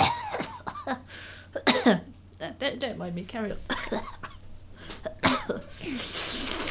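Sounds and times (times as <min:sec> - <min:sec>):
person coughing with something stuck in the throat: 0:00.0 - 0:02.1, 0:03.7 - 0:06.2
speech: 0:01.8 - 0:04.2, 0:05.5 - 0:06.6.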